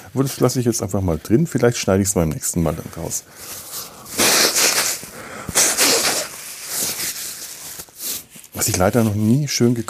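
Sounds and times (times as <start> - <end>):
speech: 0.1 - 3.9, 8.6 - 9.8
forceful nose blowing: 3.7 - 7.4
nasal spray puffed into the nostrils: 4.1 - 7.2.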